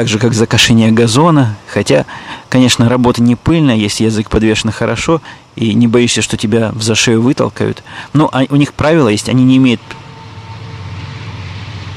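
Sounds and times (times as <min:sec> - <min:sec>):
speech: 0:00.0 - 0:10.0
long train passing: 0:08.6 - 0:11.9.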